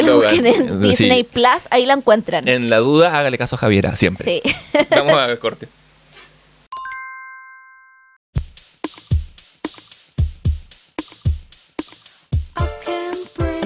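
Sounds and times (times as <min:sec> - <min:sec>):
laughter: 0:00.0 - 0:01.3, 0:04.4 - 0:05.7
speech: 0:00.0 - 0:05.8
bright chime: 0:06.7 - 0:08.2
song with a steady thumping beat and crisp percussive hits: 0:08.4 - 0:13.6.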